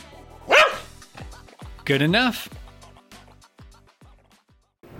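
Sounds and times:
dog barking eagerly: 0.5 - 1.0
speech: 1.9 - 2.6.

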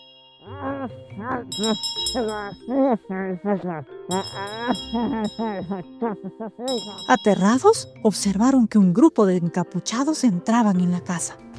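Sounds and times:
several bells tolling: 0.0 - 2.7, 4.1 - 5.8, 6.7 - 7.8
speech: 0.6 - 11.5.

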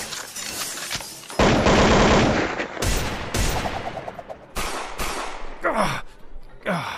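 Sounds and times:
gunfire bursts from an ongoing shooting: 1.4 - 5.5.

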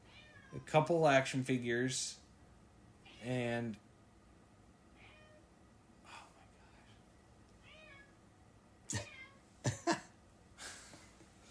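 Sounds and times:
pet cat meowing: 0.1 - 0.6, 5.0 - 5.4, 7.6 - 8.1
speech: 0.5 - 2.2, 3.2 - 3.8.

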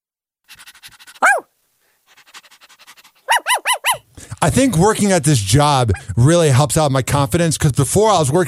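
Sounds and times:
dog yelping: 1.2 - 1.5, 3.2 - 4.1
speech: 4.4 - 8.4.

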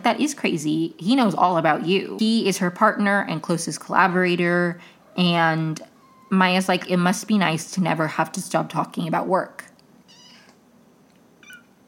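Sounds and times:
speech: 0.0 - 9.7
foster kitten meowing: 5.9 - 6.3, 10.1 - 10.6, 11.4 - 11.7.

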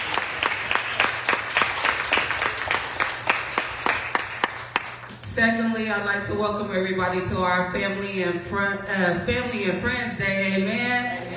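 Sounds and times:
crowd clapping rhythmically: 0.0 - 5.2
speech: 5.4 - 11.3.

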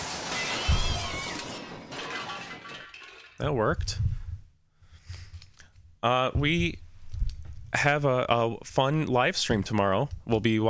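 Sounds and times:
cat yowl sound effect: 0.2 - 1.5
speech: 3.4 - 4.2, 6.0 - 6.8, 7.7 - 10.6.

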